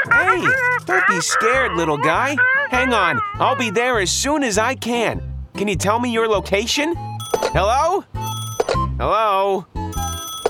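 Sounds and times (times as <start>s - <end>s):
speech: 0.4s - 8.3s, 9.0s - 9.7s
telephones ringing at a police department: 7.2s - 8.9s, 9.9s - 10.4s.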